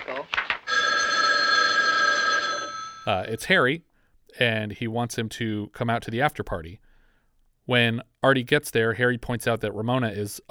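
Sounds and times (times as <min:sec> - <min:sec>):
telephone bell ringing: 0:00.7 - 0:03.1
speech: 0:03.1 - 0:06.8, 0:07.7 - 0:10.4.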